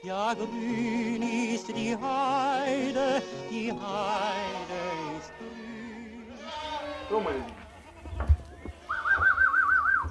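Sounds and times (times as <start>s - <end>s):
speech: 0.0s - 5.9s, 7.1s - 7.6s
goat bleating as a herd leaves a narrow stable for open heathland: 3.2s - 9.6s
rustling and thumps of a goat herd moving out of a stable: 7.0s - 10.0s.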